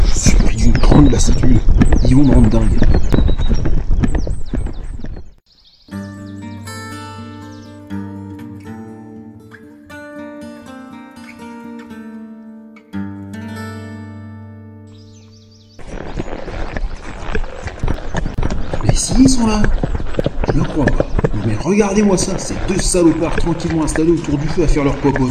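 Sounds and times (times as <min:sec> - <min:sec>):
horse hooves galloping: 0:00.0 - 0:05.4, 0:15.8 - 0:25.2
speech: 0:00.9 - 0:03.3, 0:21.7 - 0:25.2.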